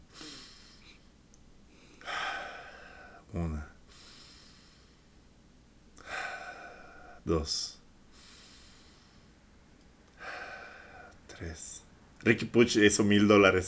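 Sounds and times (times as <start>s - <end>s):
voice imitating slow deep meditation breathing: 0.0s - 3.3s, 3.9s - 5.3s, 6.0s - 7.3s, 8.1s - 11.3s
speech: 7.2s - 7.8s, 11.4s - 13.6s.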